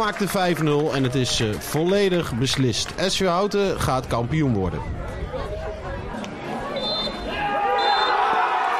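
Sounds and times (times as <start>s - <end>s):
speech: 0.0s - 5.2s
murmur of crowd chatter and voices at a football match: 0.0s - 8.7s
referee's final whistle blasts at a football match: 6.8s - 8.2s.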